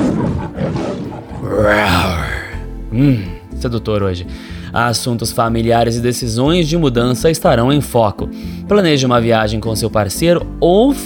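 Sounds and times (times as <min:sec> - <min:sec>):
lion roaring: 0:00.0 - 0:03.3
speech: 0:01.6 - 0:01.8, 0:03.0 - 0:11.0.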